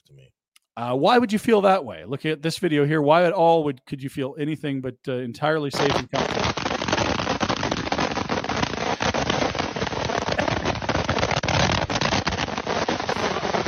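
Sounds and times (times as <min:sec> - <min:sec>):
speech: 0:00.1 - 0:06.6
fireworks crackling fired from an oil can: 0:05.7 - 0:13.6.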